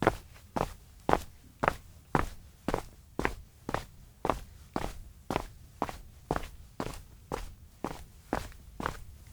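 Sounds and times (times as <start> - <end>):
footsteps walking outdoors in a town: 0.0 - 9.3.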